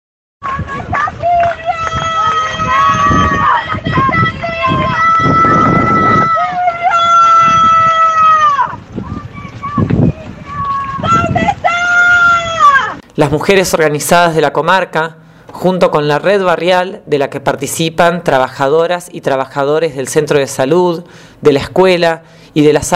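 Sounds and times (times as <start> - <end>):
large crowd of protest marchers shouting and chanting in the streets of Viedma: 0.4 - 13.0
speech: 13.2 - 22.9.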